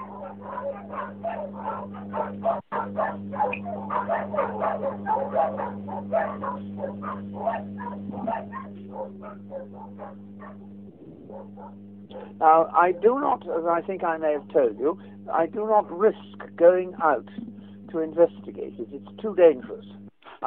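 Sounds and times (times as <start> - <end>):
dogs barking in an overlapping chorus: 0.0 - 13.3
steady low electrical hum: 0.0 - 20.4
speech: 9.4 - 20.4.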